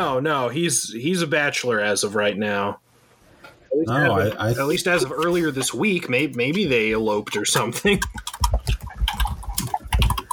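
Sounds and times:
speech: 0.0s - 2.8s, 3.7s - 8.8s
frantic typing on two computer keyboards: 4.8s - 10.3s.

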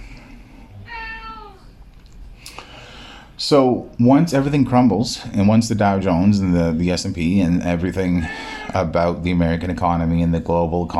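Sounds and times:
low steady hum: 0.0s - 10.9s
cat meowing: 0.8s - 1.7s
speech: 3.4s - 10.9s.

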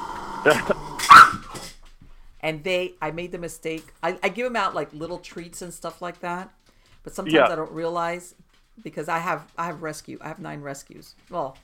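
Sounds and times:
speech: 0.4s - 1.4s, 2.4s - 11.6s
dogs barking: 0.5s - 1.6s.

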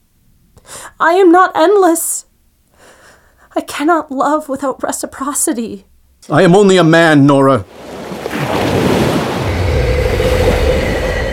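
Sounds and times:
speech: 1.0s - 2.3s, 3.6s - 7.8s
sea waves crashing against rocks: 7.7s - 11.3s.

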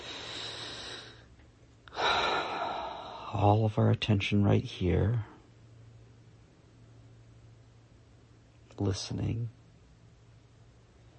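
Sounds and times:
long deep breath: 0.0s - 1.3s, 1.9s - 3.4s
speech: 3.3s - 5.3s, 8.8s - 9.6s.

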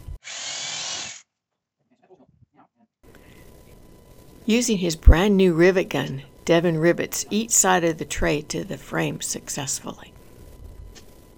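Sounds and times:
power drill boring holes through plastic condensation tray and aluminum frame of air conditioner: 0.2s - 1.2s
speech: 4.5s - 10.2s.

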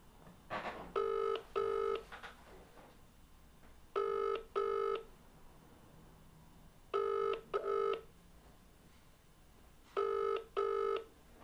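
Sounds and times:
phone ringing unanswered over a speakerphone: 1.0s - 2.1s, 4.0s - 5.1s, 7.0s - 8.1s, 10.0s - 11.1s.

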